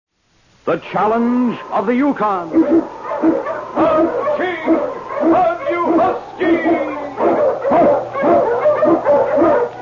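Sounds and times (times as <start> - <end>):
speech: 0.7 - 4.2
Eskimo sled lead dog barking: 2.4 - 9.8.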